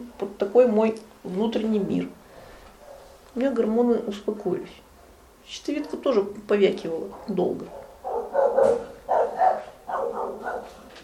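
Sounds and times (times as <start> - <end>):
speech: 0.0 - 2.2, 3.4 - 4.9, 5.5 - 7.8, 8.6 - 8.9
dog barking: 2.8 - 3.1, 7.6 - 11.0.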